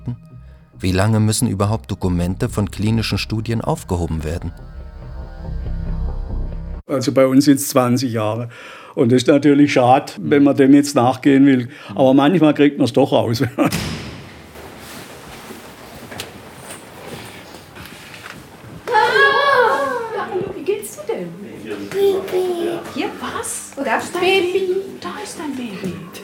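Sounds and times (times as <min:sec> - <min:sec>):
speech: 0:00.8 - 0:04.8, 0:06.9 - 0:14.0
adult voices murmuring on children's hospital ward: 0:19.3 - 0:26.2
baby babbling and cooing on children's hospital ward: 0:21.9 - 0:23.0.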